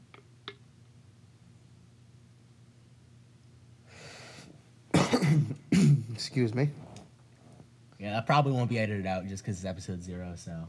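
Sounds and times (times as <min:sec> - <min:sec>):
quiet room hum: 0:00.0 - 0:10.6
short intake of breath: 0:03.9 - 0:04.6
single loud cough: 0:04.9 - 0:06.2
speech: 0:06.2 - 0:06.9, 0:08.0 - 0:10.6.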